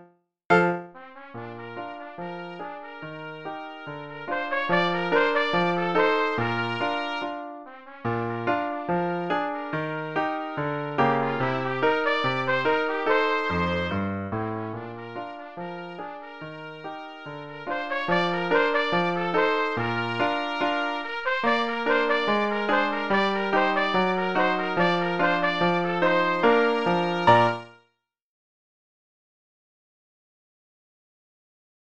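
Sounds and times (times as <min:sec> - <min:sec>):
ragtime trumpet solo: 0:00.5 - 0:27.8.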